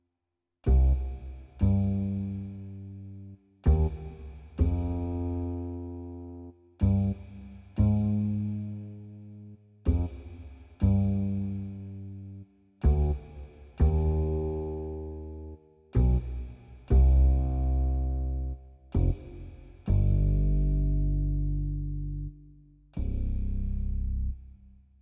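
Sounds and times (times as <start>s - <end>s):
bass cymbal: 0.7s - 6.2s, 6.8s - 24.6s.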